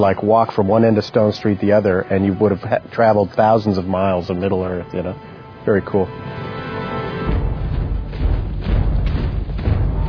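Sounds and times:
speech: 0.0 - 6.4
deep booming drums from a film scene of marching orcs: 7.3 - 10.0.

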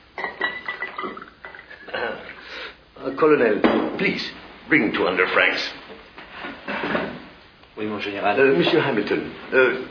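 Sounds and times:
bottle clinking on glass rim: 0.2 - 1.9
cognac poured from a bottle into a glass: 0.2 - 2.4
speech: 3.0 - 5.8, 7.8 - 9.8.

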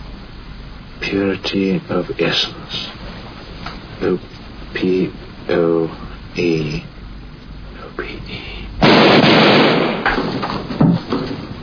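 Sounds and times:
speech: 1.0 - 3.0, 4.0 - 6.9
gunshots fired indoors: 8.8 - 11.2.

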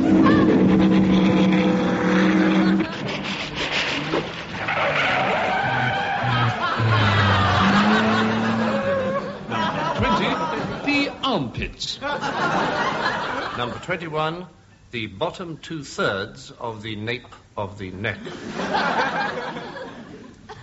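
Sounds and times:
laughter: 0.0 - 1.4, 2.2 - 3.3, 5.3 - 11.4, 12.0 - 14.0, 18.2 - 20.6
Formula 2 racing car engines revving: 0.0 - 3.2, 4.1 - 9.1
racing car tyres skidding: 0.0 - 10.8
speech: 11.6 - 19.9.

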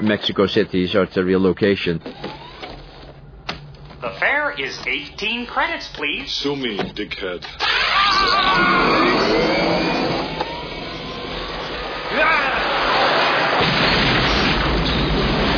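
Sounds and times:
speech: 0.1 - 2.4, 4.2 - 9.7
loud sustained explosion in a film scene set in an old cement factory: 7.8 - 15.5
blast debris: 11.7 - 15.5.

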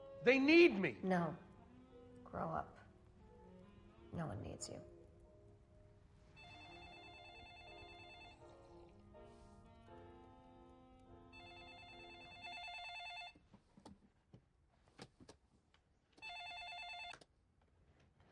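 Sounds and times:
speech: 0.2 - 1.4, 2.3 - 2.8, 4.1 - 4.9
home telephone ringing: 6.3 - 8.8, 11.3 - 13.4, 16.2 - 17.2.

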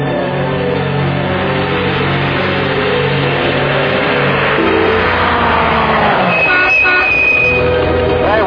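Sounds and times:
car engine roaring and revving loudly: 0.3 - 8.3
car horn toot: 6.3 - 7.7.

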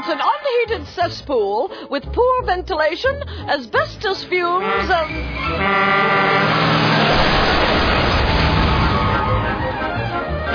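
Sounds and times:
speech: 0.0 - 7.4
car horns honking in city traffic: 4.6 - 7.1
heavy city traffic roar: 4.8 - 10.5.

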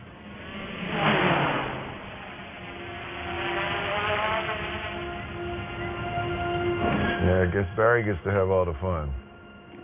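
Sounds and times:
surveillance drone motors buzzing while taking off and flying: 0.2 - 7.6
speech: 7.4 - 9.2.

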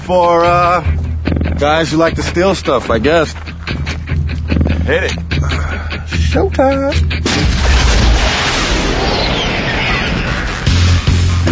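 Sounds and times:
speech: 0.1 - 3.5, 4.9 - 7.8
rocket firing and exploding: 7.2 - 11.4.

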